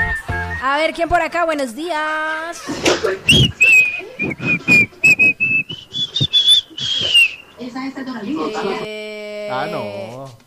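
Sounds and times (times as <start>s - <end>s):
caller whistling a song melody over a phone line: 0.0s - 0.6s, 3.3s - 7.4s
noise: 0.0s - 10.4s
speech: 0.6s - 3.6s, 4.2s - 4.9s, 7.8s - 10.4s
murmur: 2.6s - 10.4s
rhythmic thumps: 2.7s - 7.7s.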